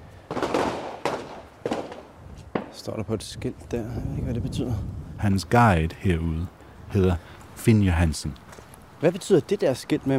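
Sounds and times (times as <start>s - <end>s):
gunshots at an indoor shooting range on Amager, Copenhagen: 0.3s - 2.8s
speech: 2.8s - 8.4s, 9.0s - 10.1s.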